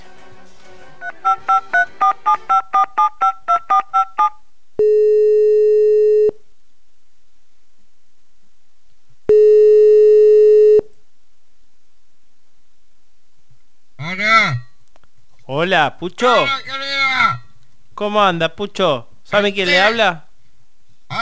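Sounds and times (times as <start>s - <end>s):
telephone keypad dialing beeps: 1.0s - 6.3s
telephone ringing tone while placing a phone call: 1.0s - 6.3s, 9.3s - 10.8s
speech: 15.6s - 16.8s, 18.0s - 20.3s.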